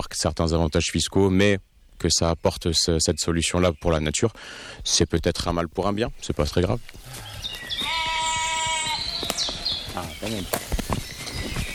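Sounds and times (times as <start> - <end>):
speech: 0.0 - 7.9, 10.0 - 10.7
birdsong: 0.0 - 11.7
rustling: 5.4 - 11.7
ewe bleating: 7.0 - 10.0.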